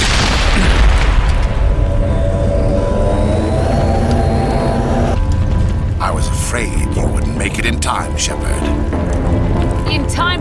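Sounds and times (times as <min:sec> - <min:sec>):
grenade explosion in a video game: 0:00.0 - 0:01.8
low steady drone: 0:00.6 - 0:10.4.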